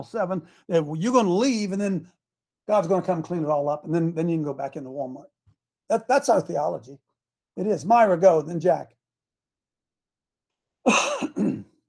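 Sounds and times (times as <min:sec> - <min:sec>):
speech: 0:00.0 - 0:05.3, 0:05.9 - 0:07.0, 0:07.6 - 0:09.0, 0:10.8 - 0:11.5
person clearing throat: 0:10.9 - 0:11.8
person coughing: 0:10.9 - 0:11.8.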